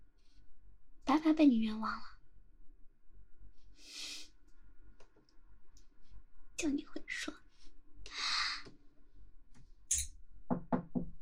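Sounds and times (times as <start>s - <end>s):
speech: 1.3s - 2.2s, 6.6s - 7.4s
firm knocking on a door: 10.5s - 11.2s.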